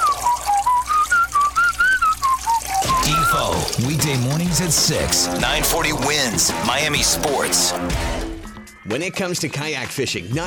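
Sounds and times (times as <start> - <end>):
man whistling a wandering tune while using a urinal: 0.0 - 3.4
water splashing in a urinal: 0.0 - 8.0
speech: 3.8 - 8.2, 8.8 - 10.4.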